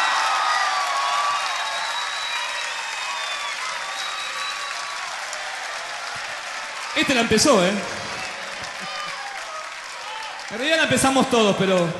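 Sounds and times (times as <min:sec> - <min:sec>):
cheers: 0:00.0 - 0:11.9
crowd clapping: 0:00.0 - 0:11.9
faint whistles: 0:01.7 - 0:05.0
speech: 0:07.0 - 0:08.0, 0:10.5 - 0:11.9.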